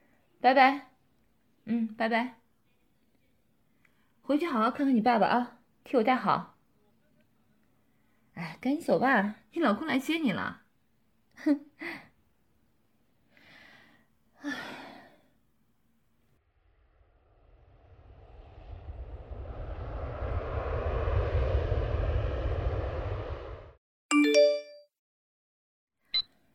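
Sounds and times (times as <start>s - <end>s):
speech: 0.4s - 0.9s, 1.6s - 2.4s, 4.3s - 6.5s, 8.4s - 10.6s, 11.4s - 12.0s, 14.4s - 14.8s
deep airplane engine roar at an airport: 18.2s - 23.8s.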